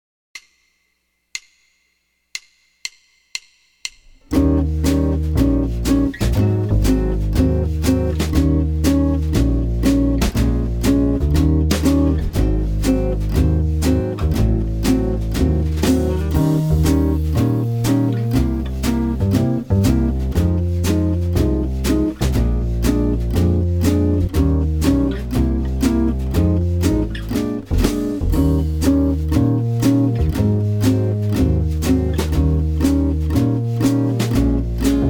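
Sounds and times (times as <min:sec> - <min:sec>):
jazz blues jazz guitar in E flat major: 0:04.3 - 0:35.0.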